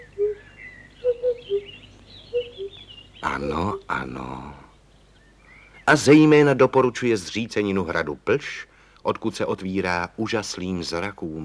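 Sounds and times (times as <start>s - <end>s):
birds whistling in shady woods: 0.0s - 6.5s
speech: 3.4s - 4.6s, 5.9s - 11.4s.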